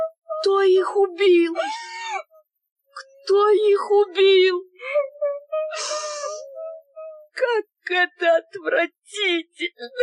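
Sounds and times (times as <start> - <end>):
child whimpering and crying: 0.0 - 2.4, 4.7 - 7.4
speech: 0.4 - 2.3, 3.0 - 5.1, 7.4 - 10.0.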